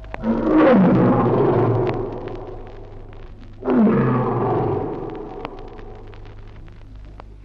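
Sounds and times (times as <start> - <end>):
saber-toothed tiger roaring: 0.2 - 3.0, 3.6 - 5.8.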